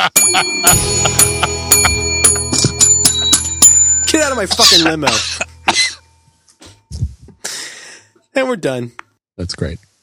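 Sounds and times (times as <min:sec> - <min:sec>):
speech: 0:00.0 - 0:01.4, 0:04.4 - 0:05.5, 0:08.4 - 0:09.9
laughter: 0:00.0 - 0:03.3, 0:04.3 - 0:05.2
small bell on a lanyard ringing: 0:00.2 - 0:07.2.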